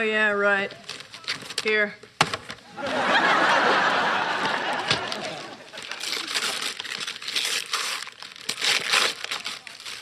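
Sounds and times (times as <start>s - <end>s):
speech: 0.0s - 0.9s, 1.6s - 2.1s, 2.8s - 4.0s
wrapping paper crinkling and tearing as a gift package of drawing pens is opened: 0.8s - 1.7s, 4.8s - 10.0s
laughter: 2.7s - 6.6s.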